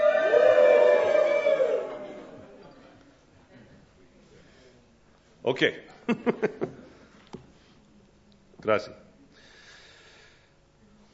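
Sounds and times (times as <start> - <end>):
audience cheering and shouting hello: 0.0 - 2.6
speech: 5.5 - 6.9, 8.6 - 9.0.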